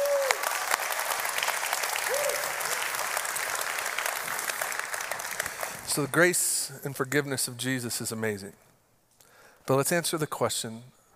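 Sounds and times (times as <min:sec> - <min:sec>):
people whooping: 0:00.0 - 0:00.8, 0:01.8 - 0:03.0
large church audience applauding: 0:00.0 - 0:06.3
speech: 0:06.0 - 0:08.7, 0:09.7 - 0:11.0.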